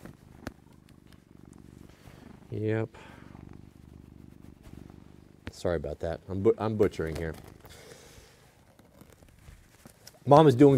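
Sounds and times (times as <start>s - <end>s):
cat purring while held upside down: 0.0s - 10.7s
speech: 2.5s - 3.2s, 5.6s - 7.8s, 10.3s - 10.7s.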